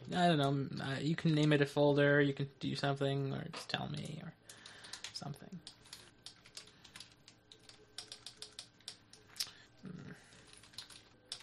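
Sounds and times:
speech: 0.1 - 4.6, 5.2 - 5.8
typing on a Windows laptop keyboard: 4.0 - 9.3, 10.3 - 11.4.

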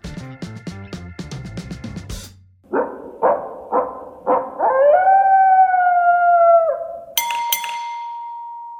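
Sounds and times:
coyote yips and long wavering howl: 2.7 - 7.1
bright clinking musical intro: 7.2 - 8.7
single clear bell ding: 7.2 - 8.7.

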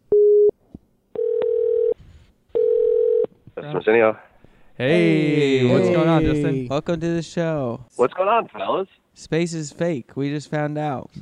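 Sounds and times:
telephone tone bursts while a call is placed: 1.2 - 2.0, 2.6 - 3.3
speech: 3.7 - 11.2.

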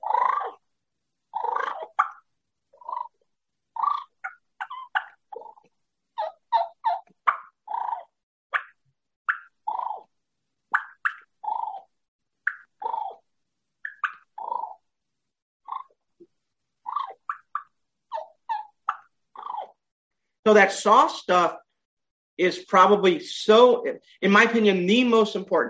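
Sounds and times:
mouth turkey call imitating turkey clucks and purrs: 0.0 - 0.6, 1.3 - 10.1, 10.7 - 14.9, 15.6 - 19.8
speech: 20.5 - 21.6, 22.4 - 25.6.

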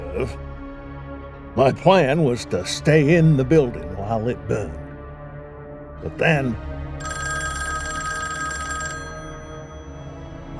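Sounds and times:
speech: 0.2 - 0.5, 1.6 - 4.8, 6.0 - 7.2
telephone ringing with an electronic trill: 7.0 - 10.5.

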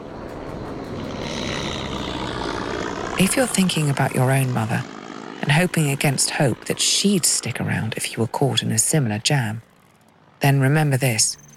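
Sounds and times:
propeller airplane droning overhead: 0.0 - 11.5
speech: 3.2 - 9.7, 10.4 - 11.5.

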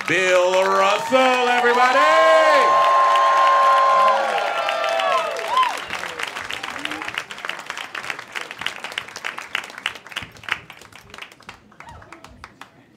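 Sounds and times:
audience cheering and whooping: 0.0 - 9.3
audience applause: 0.0 - 12.7
speech: 0.1 - 2.2.

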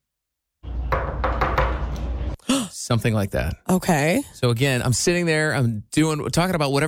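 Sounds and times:
firm knocking on a door: 0.9 - 1.9
speech: 2.5 - 6.8.

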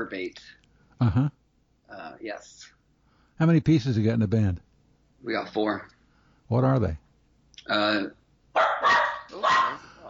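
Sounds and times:
speech: 0.0 - 2.8, 3.4 - 7.0, 7.7 - 9.8
dog barking: 8.5 - 10.0.

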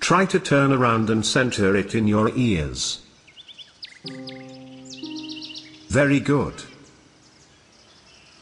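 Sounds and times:
speech: 0.1 - 3.0, 4.0 - 4.4, 5.9 - 6.7
small bird chirping while flying by: 3.1 - 8.3.

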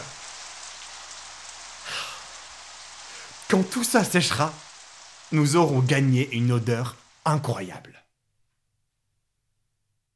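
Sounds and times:
rain drops falling on forest leaves: 0.0 - 7.9
speech: 3.5 - 4.7, 5.3 - 8.0.

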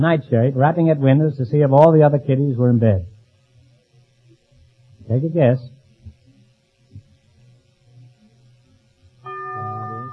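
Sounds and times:
speech: 0.0 - 3.1, 5.1 - 5.8
low murmuring noise: 0.0 - 10.1
bell tolling for a wrong answer in a quiz: 9.3 - 10.1.

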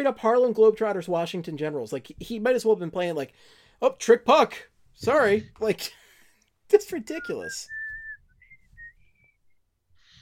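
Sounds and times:
speech: 0.0 - 6.0, 6.7 - 7.8
person whistling a short tune: 7.2 - 9.6.

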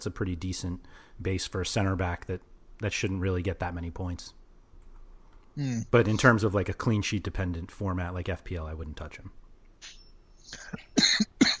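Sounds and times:
speech: 0.0 - 4.4, 5.6 - 11.3
person coughing: 10.6 - 11.5.

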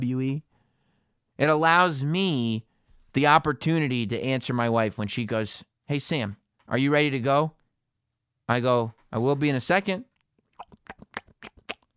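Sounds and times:
speech: 0.0 - 0.5, 1.4 - 7.6, 8.5 - 11.0
crunchy chewing of a hard chewable tablet: 10.5 - 11.9.

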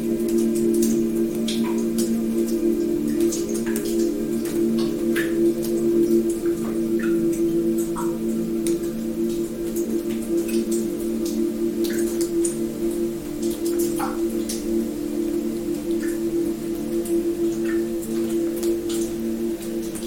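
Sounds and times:
low resonant hum with sustained tones: 0.0 - 20.0
water drops falling: 0.0 - 20.0.

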